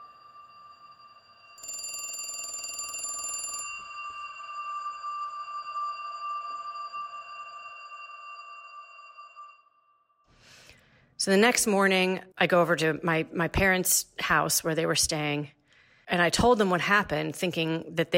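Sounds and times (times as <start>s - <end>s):
buzzing electronic telephone ring: 0.0s - 10.0s
steady high-pitched tone: 0.0s - 10.1s
speech: 11.2s - 18.1s.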